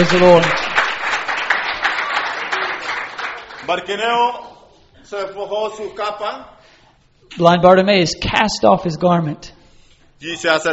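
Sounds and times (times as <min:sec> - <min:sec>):
speech: 0:00.0 - 0:00.6, 0:03.7 - 0:06.6, 0:07.3 - 0:09.6, 0:10.2 - 0:10.7
church congregation applauding with hand claps: 0:00.0 - 0:04.6.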